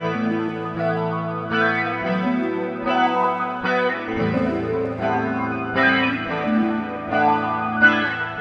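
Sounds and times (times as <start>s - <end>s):
rippling guitar: 0.0s - 8.4s.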